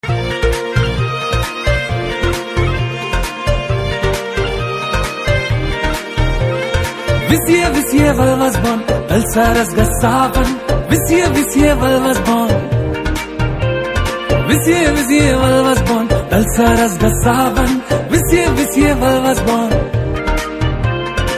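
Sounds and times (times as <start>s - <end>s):
drum beats: 0.0s - 21.3s.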